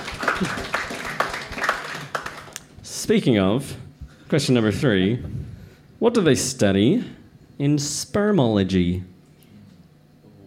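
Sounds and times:
small group applauding: 0.0 - 2.8
speech: 0.4 - 0.8, 3.1 - 9.1.

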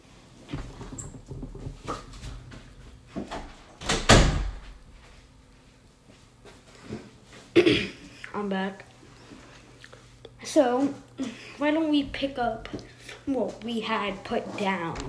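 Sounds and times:
door pushed shut with a firm thud: 3.2 - 4.8
speech: 7.6 - 8.9, 10.5 - 15.0.

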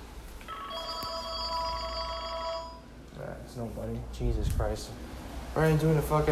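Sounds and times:
telephone ringing with electronic tone: 0.5 - 3.0
speech: 3.6 - 6.3.

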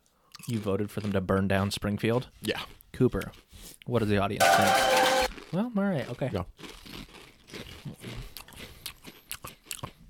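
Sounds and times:
crunchy chips being chewed: 0.3 - 1.2, 4.6 - 10.0
speech: 0.5 - 6.8.

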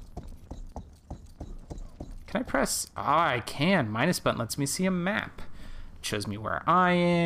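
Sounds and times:
horse hooves clip-clopping: 0.0 - 2.8
speech: 2.6 - 5.4, 6.1 - 7.2.

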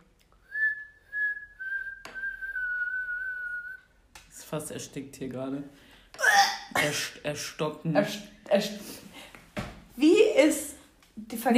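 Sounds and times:
person whistling a short high tune: 0.4 - 3.9
speech: 4.5 - 5.8, 6.8 - 9.0, 11.4 - 11.5.

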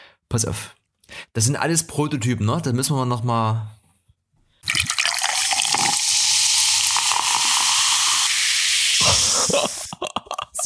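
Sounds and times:
speech: 0.3 - 0.8, 1.4 - 3.8
effervescent magnesium tablet fizzing in water: 4.6 - 10.0
laughter: 9.0 - 10.6.

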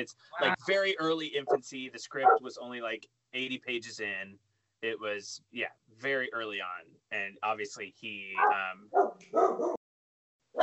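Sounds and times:
speech: 0.0 - 9.8
dog barking: 1.4 - 1.6, 2.2 - 2.5, 8.4 - 9.8.

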